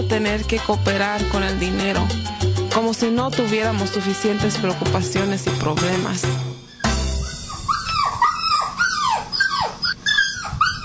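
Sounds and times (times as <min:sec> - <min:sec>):
speech: 0:00.0 - 0:06.5
stressed dog whimpering indoors in a household: 0:06.6 - 0:10.8.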